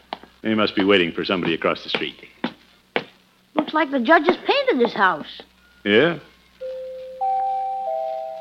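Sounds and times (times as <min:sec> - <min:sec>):
speech: 0:00.4 - 0:02.3, 0:03.7 - 0:06.3
new house doorbell chiming rising tones: 0:06.6 - 0:08.3.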